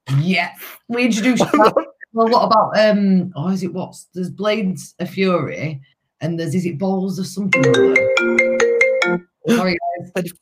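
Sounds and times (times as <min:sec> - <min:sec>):
speech: 0:00.2 - 0:10.3
mobile phone ringtone: 0:07.6 - 0:10.1.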